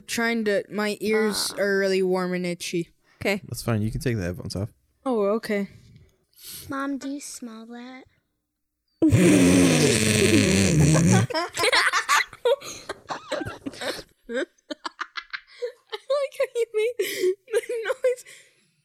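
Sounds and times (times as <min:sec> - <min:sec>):
speech: 0:00.1 - 0:05.8, 0:06.4 - 0:08.2, 0:09.0 - 0:14.6, 0:16.2 - 0:18.5
child talking: 0:01.0 - 0:01.8, 0:06.6 - 0:08.2
child imitating snoring: 0:01.1 - 0:01.7, 0:09.0 - 0:11.3
child giggling: 0:10.8 - 0:18.2.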